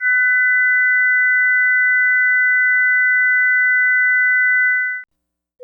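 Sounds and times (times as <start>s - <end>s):
difference tone: 0.0s - 5.0s.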